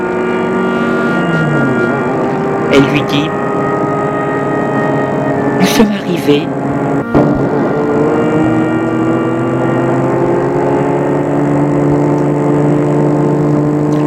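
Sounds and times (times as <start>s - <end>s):
car engine humming as car drives up to a gate in the woods: 0.0s - 14.0s
speech: 2.8s - 3.4s, 5.8s - 6.6s.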